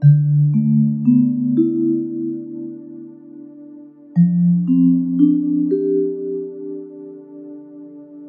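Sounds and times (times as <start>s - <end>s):
sad vibraphone loop: 0.0s - 3.2s, 4.2s - 7.3s.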